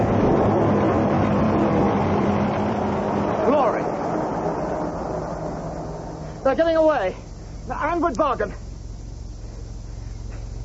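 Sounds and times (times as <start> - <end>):
car engine roaring: 0.0 - 10.6
speech: 6.5 - 8.6.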